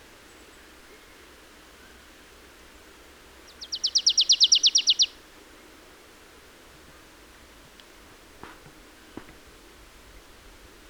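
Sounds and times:
marsh tit Poecile palustris singing: 0:03.5 - 0:05.1.

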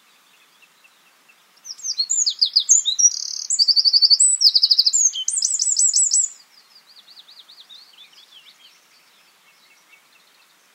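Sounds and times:
Eurasian wren Troglodytes troglodytes trilling: 0:01.6 - 0:08.7.

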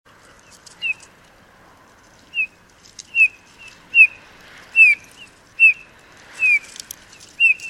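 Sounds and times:
Eurasian bullfinch Pyrrhula pyrrhula piping whistles: 0:02.4 - 0:04.2, 0:04.8 - 0:06.7, 0:07.4 - 0:07.6.

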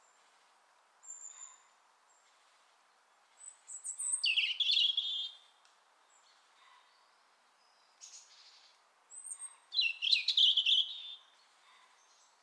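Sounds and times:
European robin Erithacus rubecula singing: 0:03.4 - 0:05.4, 0:07.6 - 0:11.3.

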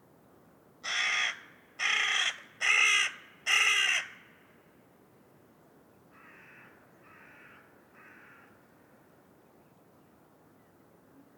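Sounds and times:
carrion crow cawing: 0:00.8 - 0:04.3, 0:06.2 - 0:08.6.

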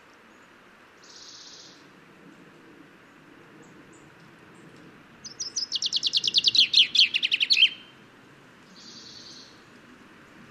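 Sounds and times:
common chaffinch Fringilla coelebs singing: 0:05.2 - 0:07.9, 0:08.7 - 0:09.6.

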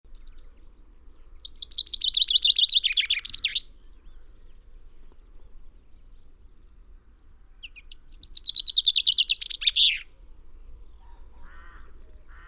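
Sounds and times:
common chaffinch Fringilla coelebs song: 0:00.1 - 0:05.2, 0:07.6 - 0:11.5.

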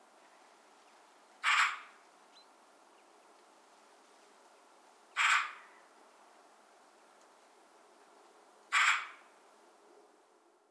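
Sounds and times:
Eurasian magpie Pica pica harsh rasping chack calls: 0:01.4 - 0:01.9, 0:05.2 - 0:05.7, 0:08.7 - 0:09.3.

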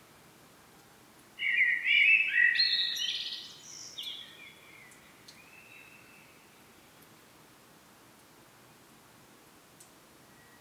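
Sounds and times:
Common blackbird Turdus merula singing a single phrase: 0:01.4 - 0:06.3.

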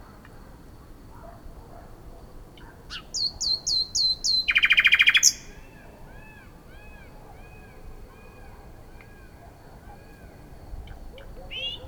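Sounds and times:
common nightingale Luscinia megarhynchos singing: 0:02.6 - 0:05.7, 0:10.8 - 0:11.8.

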